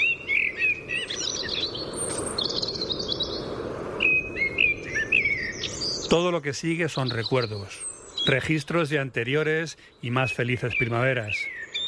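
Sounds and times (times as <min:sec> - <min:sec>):
blackbird singing at a house window in spring: 0:00.0 - 0:11.8
low steady hiss: 0:00.0 - 0:11.8
speech: 0:06.1 - 0:11.6.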